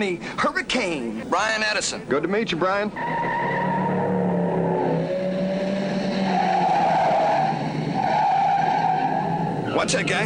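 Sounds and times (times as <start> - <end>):
speech: 0.0 - 3.4, 9.8 - 10.2
car engine noise in a street race: 0.6 - 10.2
car tires skidding and squealing in a street race: 2.9 - 10.2.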